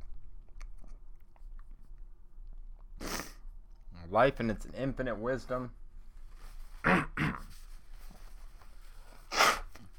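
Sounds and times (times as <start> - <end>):
faint noise: 0.0 - 9.9
speech: 4.1 - 5.8
harsh coughs after a bong hit: 6.8 - 7.5.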